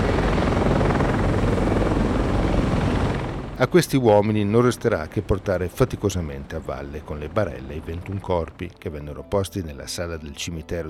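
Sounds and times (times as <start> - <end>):
helicopter rotor thump and engine drone overhead: 0.0 - 8.6
speech: 3.6 - 10.8.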